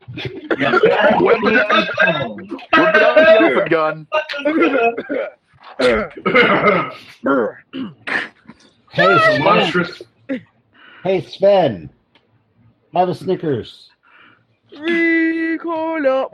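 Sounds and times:
laughter: 0.0s - 7.0s, 9.0s - 10.0s
person imitating harsh throaty coughs: 0.1s - 3.6s, 4.6s - 7.0s
speech: 0.2s - 12.0s, 12.9s - 13.9s, 14.7s - 16.3s.

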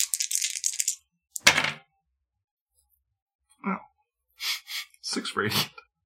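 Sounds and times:
stone and plastic dice rattling in a hand: 0.0s - 1.6s
stone and plastic dice clattering onto a hard surface: 0.0s - 1.8s
speech: 5.2s - 5.8s.

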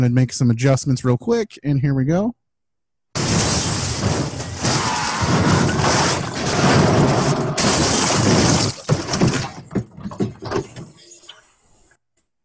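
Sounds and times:
speech: 0.0s - 2.4s
car slamming into a construction site: 3.2s - 11.0s
debris clattering: 3.2s - 11.0s.

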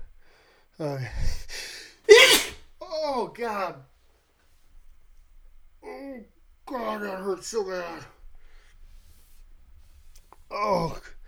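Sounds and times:
speech: 0.8s - 1.6s, 3.2s - 3.9s, 6.2s - 8.2s, 10.5s - 11.2s
hissing building inhales before a sneeze: 2.1s - 2.6s
person recovering from neck surgery sneezing: 2.1s - 2.6s.

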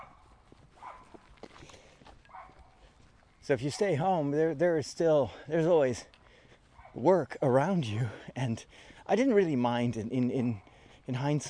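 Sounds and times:
small dog barking on a farm: 0.0s - 0.2s, 0.8s - 1.2s, 2.3s - 2.8s
low rustling outdoor background: 0.0s - 11.4s
speech: 3.5s - 6.2s, 7.0s - 11.4s.

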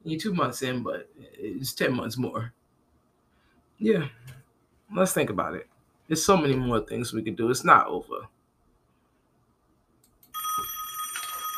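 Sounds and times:
speech: 0.0s - 2.6s, 3.8s - 8.4s
telephone ringing with an electronic trill: 10.3s - 11.5s.

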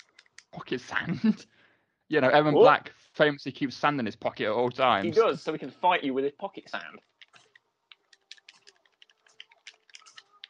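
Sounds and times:
speech: 0.6s - 7.1s
rapid frantic clicking of game controller buttons: 7.2s - 10.4s.

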